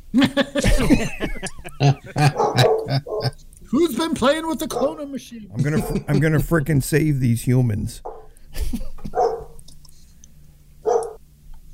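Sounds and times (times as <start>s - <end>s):
quiet indoor hum: 0.0s - 11.7s
speech: 0.1s - 1.2s, 4.2s - 8.9s
laughter: 0.1s - 3.4s, 5.5s - 6.9s, 8.5s - 9.1s
dog barking sharply: 2.2s - 3.3s, 4.7s - 5.1s, 8.0s - 8.3s, 9.1s - 9.6s, 10.8s - 11.2s.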